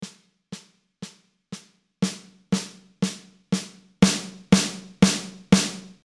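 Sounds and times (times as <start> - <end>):
snare drum hits at different velocity levels: 2.0 - 6.0.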